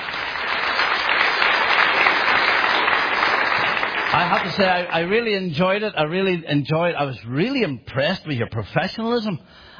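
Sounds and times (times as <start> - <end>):
room full of people applauding: 0.0 - 5.4
speech: 4.3 - 9.7.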